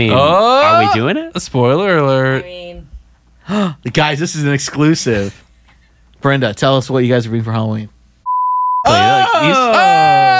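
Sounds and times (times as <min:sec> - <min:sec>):
speech: 0:00.0 - 0:02.9, 0:03.5 - 0:05.4, 0:06.2 - 0:08.0, 0:08.8 - 0:10.3
steady high-pitched censor beep: 0:08.2 - 0:09.0.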